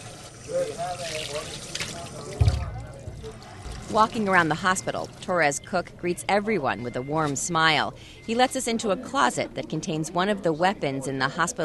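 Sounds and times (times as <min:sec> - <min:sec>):
tap water running as hands are washed at a hospital sink: 0:00.0 - 0:04.5
speech: 0:00.5 - 0:11.6.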